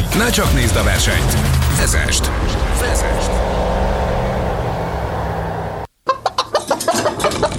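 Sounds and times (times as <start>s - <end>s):
speech: 0.2s - 4.0s
steady rumbling noise: 0.4s - 6.0s
chickens clucking: 6.0s - 7.5s.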